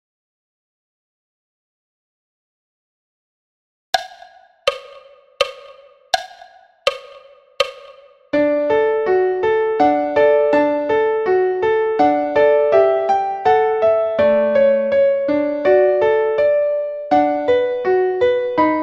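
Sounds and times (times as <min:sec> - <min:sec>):
piano minuet: 0:07.6 - 0:18.8.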